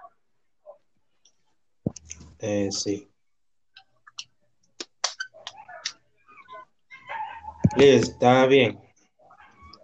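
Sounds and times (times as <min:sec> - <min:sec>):
speech: 0:02.4 - 0:03.1, 0:07.8 - 0:08.8
dog giving whiny higher-pitched yelps: 0:05.2 - 0:07.8
dog barking in short sharp yaps: 0:07.0 - 0:07.7.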